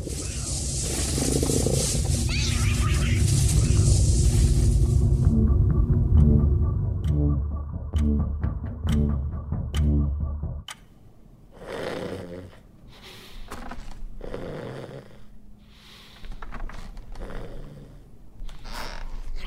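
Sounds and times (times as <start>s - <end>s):
wild animal hissing and scuffling while attacking a cat: 0.0s - 5.0s
rhythmic thumps and clicks: 0.0s - 10.8s
low sounds: 0.0s - 11.5s.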